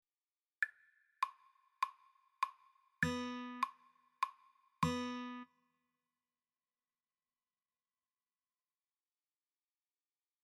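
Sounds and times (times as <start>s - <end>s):
rhythm guitar intro: 3.0s - 3.7s, 4.8s - 5.4s.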